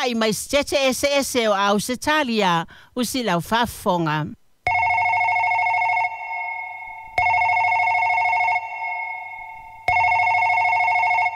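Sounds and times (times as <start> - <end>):
speech: 0.0 - 4.4
telephone ringing with electronic bell tone: 4.7 - 11.3.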